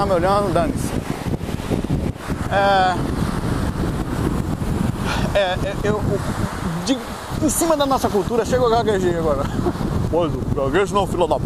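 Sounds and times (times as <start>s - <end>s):
speech: 0.0s - 1.1s, 2.5s - 3.2s, 5.1s - 11.4s
wind buffeting a phone microphone at a beach: 0.0s - 11.4s.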